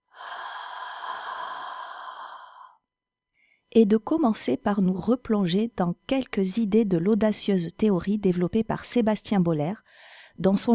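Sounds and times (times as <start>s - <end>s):
deep slow breath in and out: 0.0s - 2.8s, 9.9s - 10.4s
speech: 3.7s - 10.7s.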